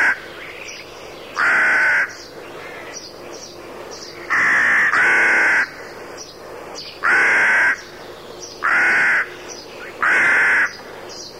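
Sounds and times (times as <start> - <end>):
rook cawing: 0.0 - 0.5, 1.3 - 3.0, 4.0 - 6.0, 6.9 - 8.0, 8.6 - 11.2.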